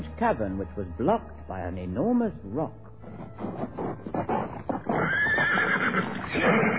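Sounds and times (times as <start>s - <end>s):
speech: 0.2s - 4.4s
galloping horse hooves: 3.0s - 6.7s
horse neighing: 4.5s - 6.7s.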